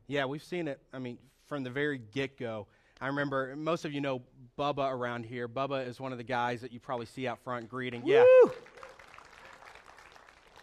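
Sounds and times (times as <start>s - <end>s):
speech: 0.1s - 8.8s
crowd clapping: 7.5s - 10.6s.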